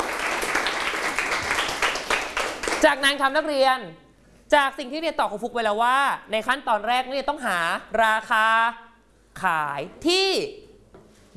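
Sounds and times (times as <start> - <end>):
students clapping for a classmate in a classroom: 0.0 - 3.0
speech: 2.8 - 8.8, 9.4 - 10.6.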